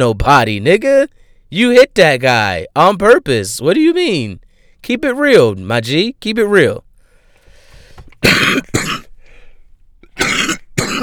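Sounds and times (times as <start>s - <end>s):
speech: 0.0s - 6.8s
person coughing harshly: 8.2s - 9.2s, 10.0s - 11.0s
throat clearing: 8.2s - 9.2s, 10.0s - 11.0s.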